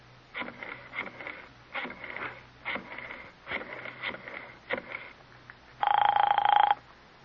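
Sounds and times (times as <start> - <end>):
telephone ringing with rattling bursts and a buzzing ring: 5.8 - 6.8.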